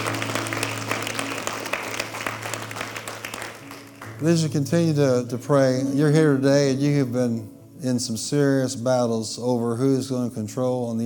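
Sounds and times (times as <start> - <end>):
audience applauding: 0.0 - 4.7
speech: 4.2 - 11.0.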